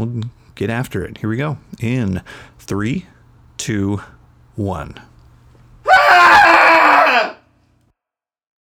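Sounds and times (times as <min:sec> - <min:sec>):
speech: 0:00.0 - 0:05.1
several voices screaming together: 0:05.9 - 0:07.4.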